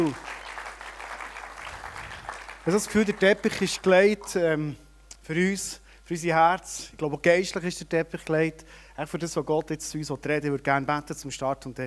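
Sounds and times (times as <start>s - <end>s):
speech: 0.0s - 0.3s, 2.6s - 11.8s
audience applause: 0.0s - 4.3s.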